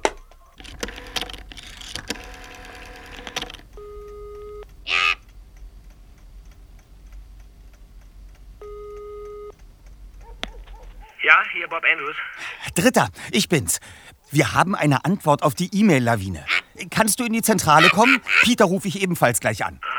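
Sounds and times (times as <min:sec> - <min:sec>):
mechanical clicks of a telephone being dialed: 0:00.1 - 0:03.7
telephone ringing tones: 0:00.6 - 0:01.5, 0:02.0 - 0:04.7
speech: 0:11.3 - 0:19.9.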